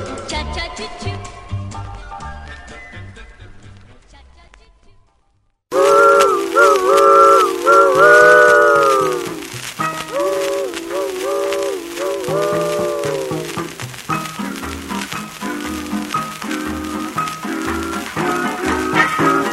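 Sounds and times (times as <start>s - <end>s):
chord-like steam train whistle: 5.7s - 19.5s.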